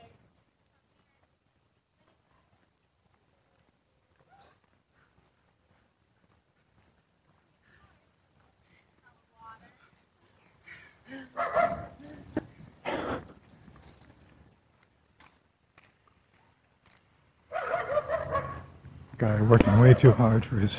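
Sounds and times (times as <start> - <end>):
faint street noise: 0.0 - 20.7
dog barking outdoors: 11.4 - 12.0, 17.5 - 18.7
speech: 19.2 - 20.7.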